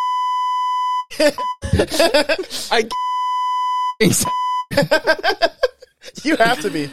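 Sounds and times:
censor bleeps from a button: 0.0 - 1.7, 2.9 - 4.7
laughter: 1.1 - 2.9, 4.7 - 6.9
speech: 1.2 - 3.1, 4.0 - 5.6, 6.2 - 6.9.

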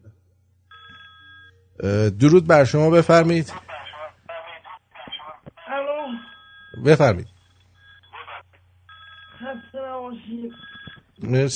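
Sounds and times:
low hum: 0.0 - 11.5
telephone ringing with electronic burst: 0.7 - 1.8, 5.7 - 11.2
speech: 1.8 - 3.6, 6.8 - 7.3, 11.2 - 11.5.

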